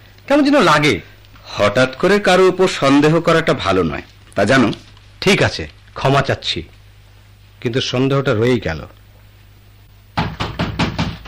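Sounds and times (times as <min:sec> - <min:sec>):
speech: 0:00.3 - 0:06.8, 0:07.6 - 0:09.0
knocking on a door: 0:10.2 - 0:11.2.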